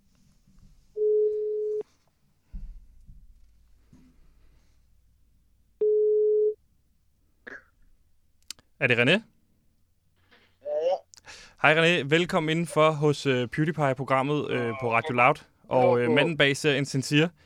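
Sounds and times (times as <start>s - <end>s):
outgoing telephone call ringing tone heard from the caller's end: 1.0s - 1.8s, 5.8s - 6.6s
speech: 8.8s - 9.3s, 11.6s - 17.4s.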